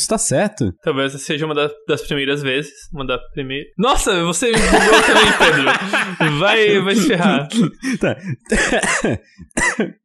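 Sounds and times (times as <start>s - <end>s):
speech: 0.0s - 10.0s
laughter: 4.5s - 9.2s
person coughing with rough raspy coughs: 4.8s - 10.0s.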